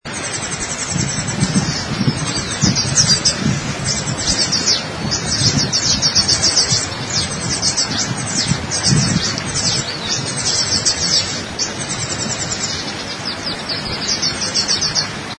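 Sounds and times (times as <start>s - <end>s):
Sardinian warbler calling: 0.1s - 15.3s.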